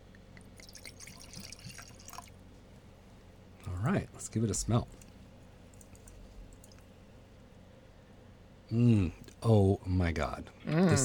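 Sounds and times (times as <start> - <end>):
drink poured into a glass: 0.5 - 2.4
speech: 3.8 - 5.0, 8.7 - 11.0.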